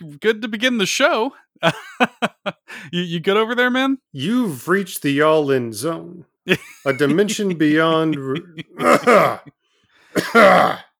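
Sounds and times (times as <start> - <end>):
speech: 0.2 - 9.6, 10.2 - 10.8
laughter: 1.6 - 2.7, 6.5 - 9.5
man clearing his throat: 8.6 - 9.5, 10.2 - 10.9.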